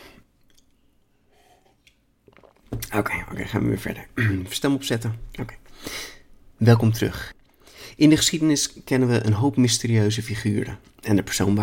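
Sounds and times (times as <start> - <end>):
person sipping water and swallowing: 1.4 - 3.0
speech: 2.9 - 7.4, 8.0 - 11.6.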